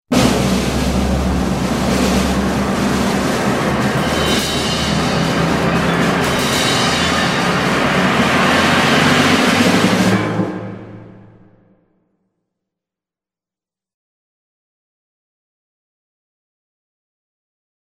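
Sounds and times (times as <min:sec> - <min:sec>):
cacophony: 0:00.1 - 0:11.6.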